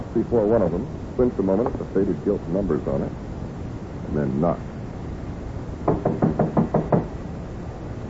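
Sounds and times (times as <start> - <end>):
speech: 0.2 - 3.2, 4.1 - 4.7
knuckles knocking on a warped dark-stained wooden door in a run-down hallway: 5.8 - 7.1.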